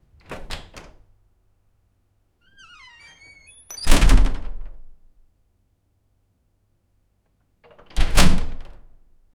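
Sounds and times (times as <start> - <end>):
heavy door opening: 2.5 - 4.6.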